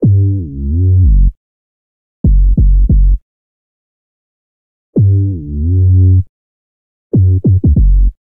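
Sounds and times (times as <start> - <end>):
F# minor bassline at 83 bpm: 0.0 - 1.4, 2.2 - 3.2, 5.0 - 6.3, 7.1 - 8.2.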